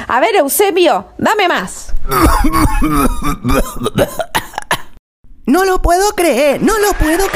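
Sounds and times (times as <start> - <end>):
speech: 0.1 - 4.4, 5.5 - 7.3
man coughing with hacking voiced coughs: 2.0 - 5.0.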